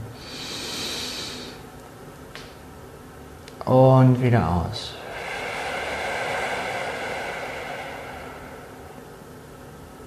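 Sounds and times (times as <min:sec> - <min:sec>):
deep inhalation: 0:00.2 - 0:01.6, 0:04.9 - 0:09.9
speech: 0:03.6 - 0:05.0.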